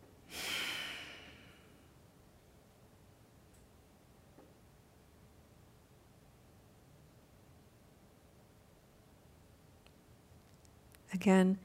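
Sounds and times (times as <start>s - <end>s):
strong exhale during yoga belly breathing: 0.3s - 1.8s
speech: 11.1s - 11.6s.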